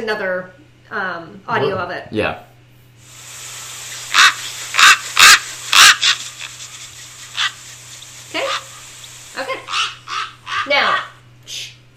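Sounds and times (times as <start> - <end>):
speech: 0.0 - 3.2
low steady hum: 0.1 - 11.9
Australian raven cawing harshly: 3.9 - 11.2.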